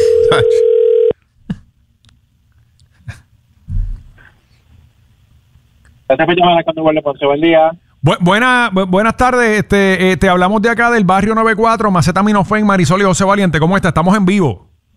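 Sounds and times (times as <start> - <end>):
telephone ringback tone on an outgoing call: 0.0 - 1.1
speech: 0.3 - 0.6, 6.1 - 14.7.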